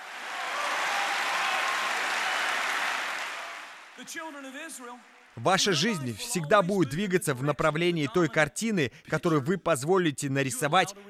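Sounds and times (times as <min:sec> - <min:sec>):
crowd clapping hands in applause: 0:00.0 - 0:05.8
person speaking loudly: 0:04.0 - 0:11.0
speech: 0:04.0 - 0:11.0.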